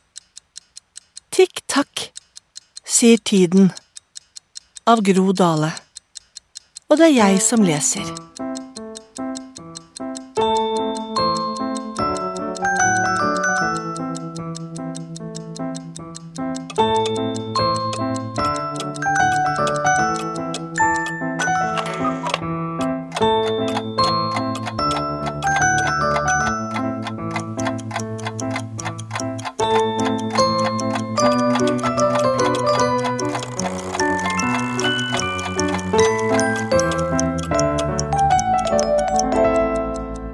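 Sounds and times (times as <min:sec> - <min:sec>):
clock ticking: 0:00.0 - 0:40.3
speech: 0:03.0 - 0:03.8, 0:04.8 - 0:05.8, 0:06.9 - 0:08.5.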